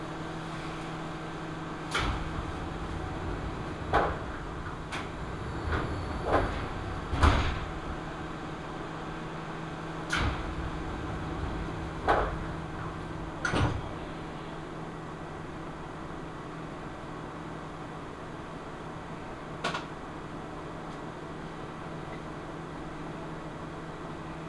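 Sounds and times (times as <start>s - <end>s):
train carriage rumble on the Seibu Chichibu Line in Japan: 0.0s - 24.4s.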